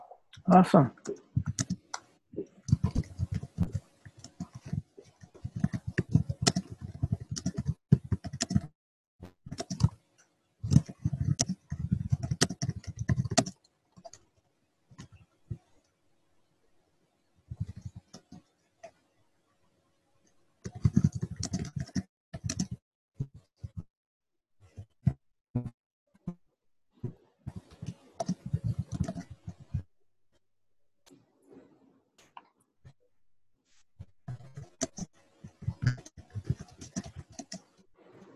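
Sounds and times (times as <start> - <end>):
speech: 0.5 - 1.2
typing a comment on a computer keyboard: 1.1 - 2.1, 2.7 - 8.7, 9.5 - 9.9, 10.7 - 14.2, 17.5 - 18.4, 20.7 - 22.8, 27.5 - 29.7, 34.4 - 37.7.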